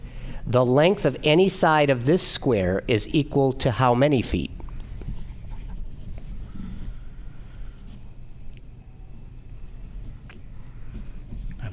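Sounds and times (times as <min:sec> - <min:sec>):
speech: 0:00.5 - 0:04.6
pencil worn down to a nub scratching across paper: 0:04.9 - 0:06.5, 0:10.8 - 0:11.6.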